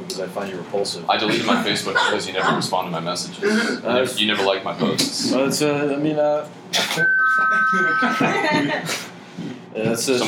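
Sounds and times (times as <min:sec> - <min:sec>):
speech: 0:00.1 - 0:09.1, 0:09.8 - 0:10.2
people laughing: 0:01.2 - 0:02.8, 0:07.7 - 0:09.1
bright doorbell-like electronic keyboard tone: 0:07.0 - 0:08.7.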